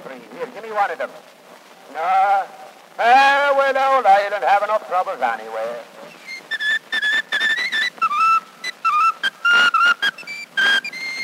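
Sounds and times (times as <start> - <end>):
speech: 0.7 - 6.0
person whistling a lively bouncy Irish-style tune: 6.2 - 11.2.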